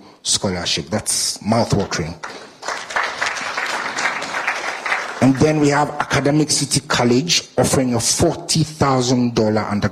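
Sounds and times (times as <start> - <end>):
speech: 0.2 - 2.5, 5.2 - 9.9
audience applause: 2.2 - 5.7.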